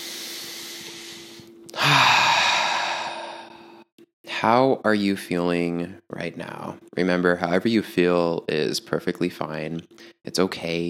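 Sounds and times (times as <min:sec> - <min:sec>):
deep breathy exhale during a guided breathing exercise: 0:00.0 - 0:03.9
speech: 0:04.4 - 0:10.8.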